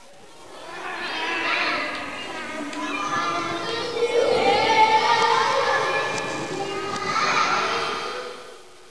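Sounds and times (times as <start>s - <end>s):
strange children: 0.0s - 8.8s.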